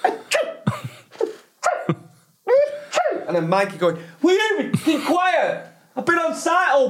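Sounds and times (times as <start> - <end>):
person imitating someone sneezing in the morning: 0.0 - 3.4
speech: 3.3 - 6.8.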